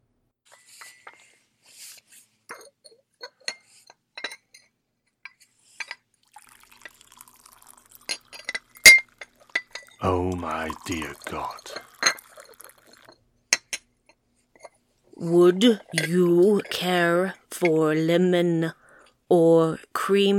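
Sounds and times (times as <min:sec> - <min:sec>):
china cups clinking: 0:05.8 - 0:13.8, 0:15.8 - 0:16.6
tea pouring into a cup: 0:06.2 - 0:13.2
speech: 0:10.0 - 0:11.9, 0:15.2 - 0:20.3.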